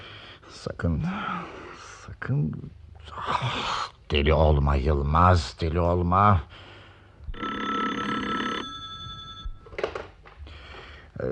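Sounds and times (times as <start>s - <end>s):
speech: 0.6s - 6.7s
telephone bell ringing: 7.3s - 9.7s
telephone receiver picked up with clattering and handling noises: 8.9s - 10.4s.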